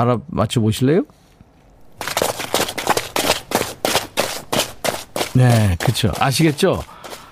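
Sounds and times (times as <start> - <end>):
speech: 0.0 - 1.2, 5.4 - 7.0
soldiers running in step in boots: 1.8 - 7.3.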